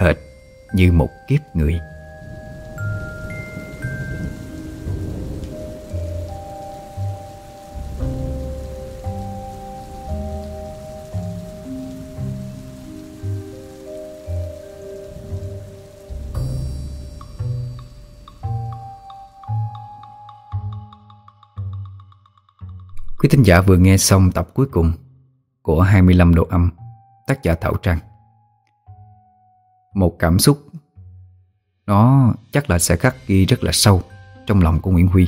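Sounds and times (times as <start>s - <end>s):
speech: 0.0s - 1.9s, 23.3s - 28.1s, 30.0s - 30.7s, 31.9s - 35.2s
heavy rain pouring down: 0.0s - 20.2s
sustained melodic tones: 0.0s - 21.0s.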